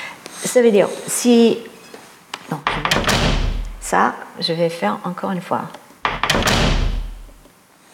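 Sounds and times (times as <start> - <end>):
speech: 0.4 - 1.7, 3.9 - 5.8
door swinging shut with a thud and rattle: 2.6 - 4.0, 6.0 - 7.5.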